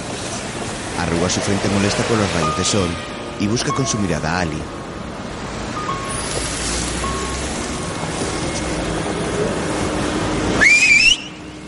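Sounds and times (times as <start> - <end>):
steady outdoor noise like wind or surf: 0.0 - 11.6
speech: 1.1 - 4.8
woman whistling loudly by a seaside promenade: 10.6 - 11.4.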